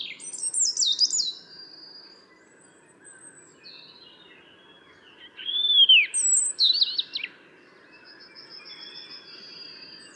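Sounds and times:
European robin Erithacus rubecula singing: 0.0 - 10.1.

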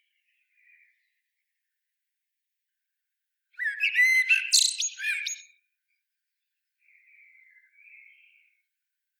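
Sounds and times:
Common blackbird Turdus merula fluty warbling and scratchy twitter: 3.6 - 5.5.

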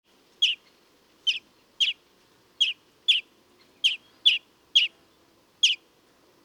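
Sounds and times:
European greenfinch calling: 0.4 - 2.0, 2.6 - 4.9, 5.6 - 5.8.

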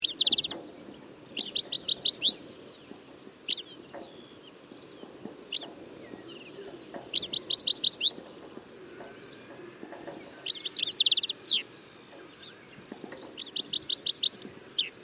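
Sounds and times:
European goldfinch Carduelis carduelis buzzy twittering: 0.0 - 8.4, 9.0 - 15.0
faint background noise: 0.0 - 15.0
soft goldfinch chirps: 0.0 - 15.0.

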